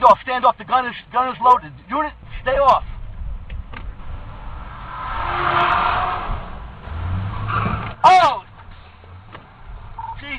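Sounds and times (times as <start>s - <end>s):
speech: 0.1s - 2.9s
police squad car speeding past with engine and road roar: 4.2s - 8.0s.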